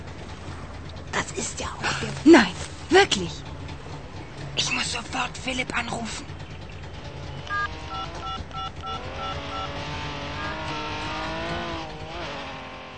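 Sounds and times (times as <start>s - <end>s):
Porsche and Trabant car engines arriving: 0.0s - 12.9s
speech: 1.3s - 3.4s, 4.6s - 6.4s
short electronic beeping tones: 7.4s - 10.7s.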